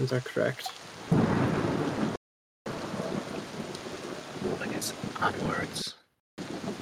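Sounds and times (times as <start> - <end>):
speech: 0.0 - 0.8, 4.8 - 5.8
rain in a thunderstorm: 0.0 - 6.8
rumble of thunder: 1.1 - 6.8.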